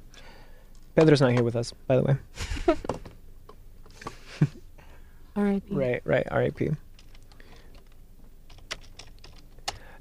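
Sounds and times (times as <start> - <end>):
speech: 1.0 - 3.0, 5.4 - 6.8
typing on a computer keyboard: 7.0 - 9.9.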